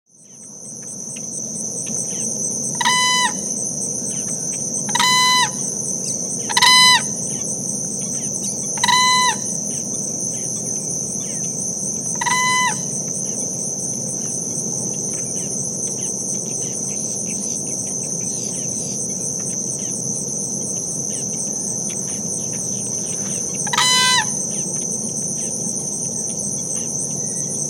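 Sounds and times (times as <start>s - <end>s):
Whooping Crane Grus americana wading in large water: 2.0s - 27.6s.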